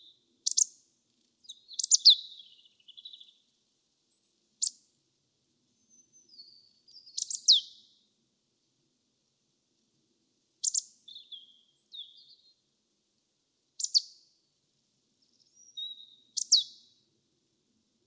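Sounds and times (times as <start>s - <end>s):
Marsh tit Poecile palustris pitchou calls: 0.0s - 0.8s, 1.5s - 3.4s, 5.8s - 7.8s, 10.6s - 12.4s, 13.8s - 14.2s, 15.2s - 16.9s.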